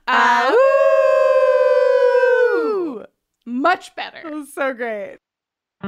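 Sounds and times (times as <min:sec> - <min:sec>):
several people howling together like wolves: 0:00.1 - 0:03.1
speech: 0:03.7 - 0:05.2.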